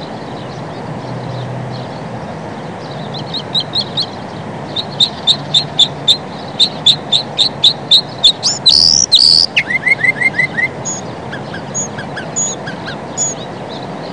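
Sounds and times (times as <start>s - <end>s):
Northern mockingbird singing varied phrases of chips, buzzes and whistles: 2.8s - 14.1s.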